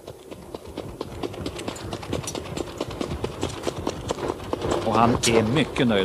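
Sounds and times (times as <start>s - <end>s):
trotting hooves of a mare during warm-up: 0.0s - 6.0s
rumbling rattling undertone: 2.0s - 6.0s
speech: 5.0s - 6.0s.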